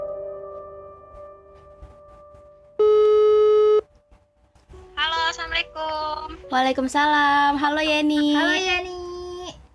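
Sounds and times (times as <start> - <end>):
electronic phone call tones, steady overlapping beeps: 2.8 - 3.9
speech: 6.5 - 8.9.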